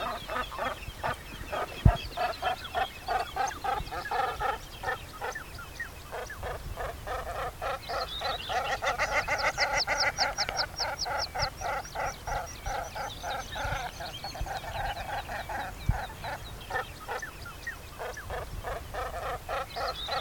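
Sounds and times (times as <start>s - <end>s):
flock of birds calling: 0.0s - 20.1s.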